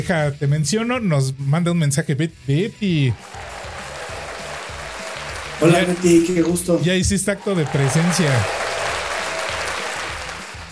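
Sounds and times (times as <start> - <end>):
speech: 0.0 - 3.5, 5.6 - 8.6
crowd applause: 3.2 - 10.6.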